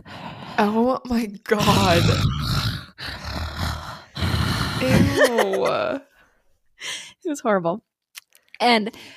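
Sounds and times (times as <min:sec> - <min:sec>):
speech: 0:00.6 - 0:03.1, 0:04.8 - 0:06.1, 0:06.8 - 0:07.9, 0:08.6 - 0:09.1
voice mimicking a woman smoker clearing her throat: 0:01.6 - 0:06.0
laughter: 0:04.8 - 0:06.0.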